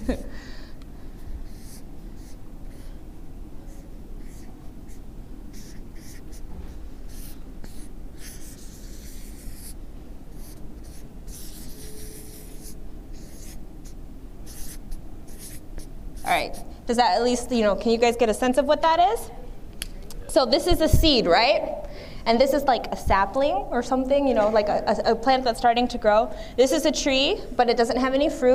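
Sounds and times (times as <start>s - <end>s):
breathing: 0.3s - 1.4s, 2.7s - 3.1s, 21.8s - 22.3s, 26.3s - 26.6s
quick scratchy strokes of someone drawing a seed and sapling by hand: 1.4s - 2.4s, 3.7s - 6.4s, 7.1s - 9.8s, 10.4s - 15.6s
speech: 16.4s - 19.4s, 20.4s - 21.7s, 22.3s - 28.5s.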